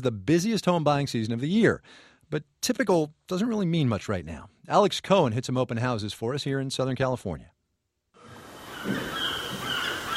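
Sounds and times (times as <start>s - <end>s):
speech: 0.0s - 7.6s
seagulls calling beside the Pacific Ocean in Santa Monica: 8.2s - 10.1s
seaside noise beside the Pacific Ocean in Santa Monica: 8.2s - 10.1s.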